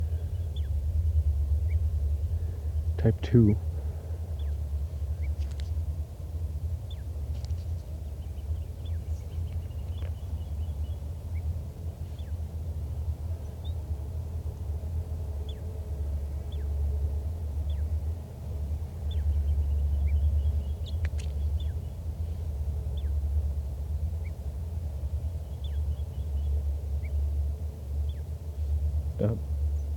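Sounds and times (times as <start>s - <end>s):
steady heavy low rumble: 0.0s - 29.9s
wild male bird singing soft song: 0.0s - 29.9s
speech: 3.0s - 3.7s.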